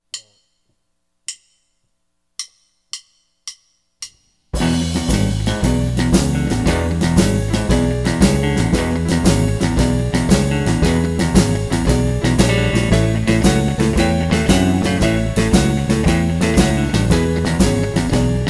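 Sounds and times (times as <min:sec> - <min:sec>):
blues shuffle in E: 0:04.6 - 0:18.4.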